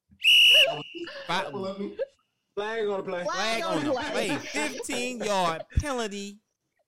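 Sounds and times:
shrill referee whistle blast: 0:00.2 - 0:01.1
speech: 0:00.7 - 0:06.4
laughter: 0:03.3 - 0:06.0.

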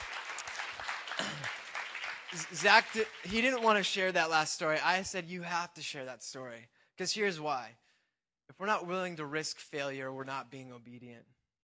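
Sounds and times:
audience applause from a group: 0:00.0 - 0:04.8
speech: 0:02.3 - 0:07.8, 0:08.6 - 0:11.4.

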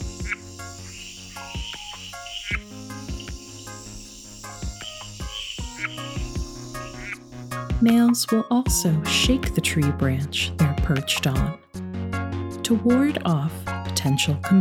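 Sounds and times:
male red-eyed tree frogs calling with clicking chucks: 0:00.0 - 0:07.8
steady dense drone of insects: 0:00.0 - 0:07.8
speech: 0:07.8 - 0:11.6, 0:12.7 - 0:14.6.

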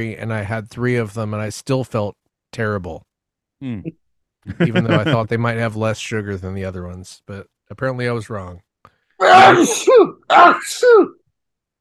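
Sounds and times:
speech: 0:00.0 - 0:11.2
laughter: 0:04.5 - 0:05.3
voice imitating a loud screaming sneeze: 0:09.2 - 0:11.2.

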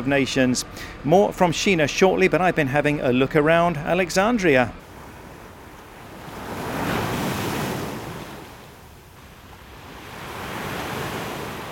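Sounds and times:
speech: 0:00.0 - 0:04.8
sea waves washing onto a sandy Mediterranean beach: 0:04.8 - 0:11.6.

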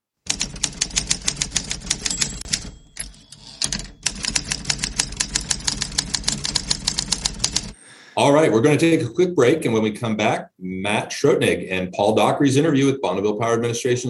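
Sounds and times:
typewriter keystrokes clacking: 0:00.3 - 0:07.8
speech: 0:08.2 - 0:14.0.

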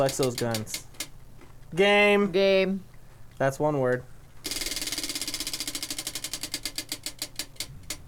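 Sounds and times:
speech: 0:00.0 - 0:00.9, 0:01.7 - 0:04.1
game wheel pointer ticking as the wheel spins: 0:00.0 - 0:01.2, 0:03.9 - 0:08.0.

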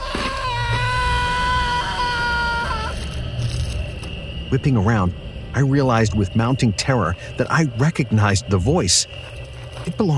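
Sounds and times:
piercing high-pitched human scream in darkness: 0:00.0 - 0:03.2
low rumbling background: 0:00.4 - 0:10.1
speech: 0:04.5 - 0:10.1.

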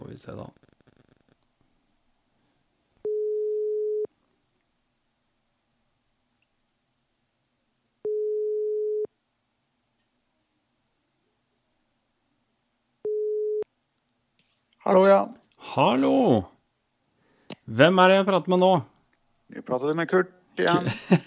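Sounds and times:
speech: 0:00.2 - 0:00.7, 0:14.9 - 0:16.5, 0:17.7 - 0:18.9, 0:19.6 - 0:21.2
telephone call tones while a call is being placed: 0:03.0 - 0:04.1, 0:08.0 - 0:09.1, 0:13.0 - 0:13.6
laughter: 0:20.6 - 0:21.2.

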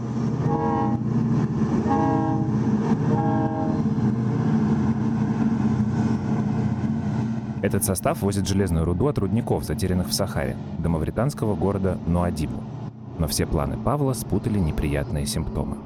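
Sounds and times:
long freight train carrying iron ore rumbling past in Mauritania: 0:00.0 - 0:15.8
freight train horn blasts: 0:00.4 - 0:01.1, 0:01.8 - 0:04.0
speech: 0:07.6 - 0:15.8.

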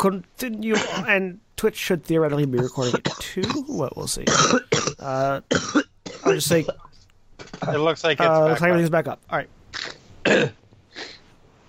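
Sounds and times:
speech: 0:00.0 - 0:06.8, 0:07.4 - 0:09.6, 0:10.2 - 0:11.1
raspy coughs: 0:00.7 - 0:01.1, 0:02.6 - 0:03.6, 0:04.2 - 0:06.9, 0:09.8 - 0:11.2.

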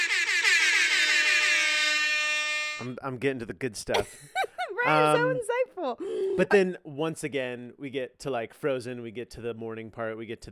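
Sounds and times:
air horn blaring from a small handheld buzzer: 0:00.0 - 0:03.0
speech: 0:02.8 - 0:10.5.

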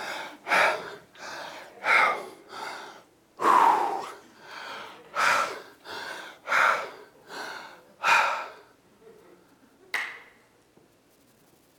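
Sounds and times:
person breathing heavily while catching their breath: 0:00.0 - 0:08.7.

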